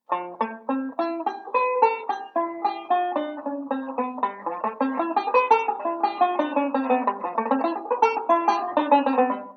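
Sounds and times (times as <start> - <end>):
banjo playing a ii V speed drill: 0.0 - 9.5.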